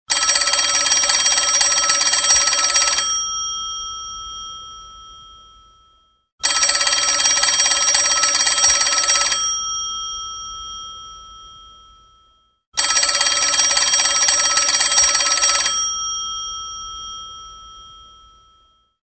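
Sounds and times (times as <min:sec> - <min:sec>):
old telephone ringtones: 0:00.1 - 0:03.8, 0:06.4 - 0:10.8, 0:12.8 - 0:17.8.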